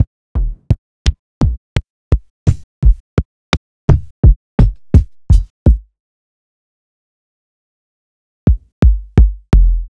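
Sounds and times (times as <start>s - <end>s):
sliced kick drums: 0.0s - 3.3s, 3.9s - 5.8s, 8.5s - 9.8s.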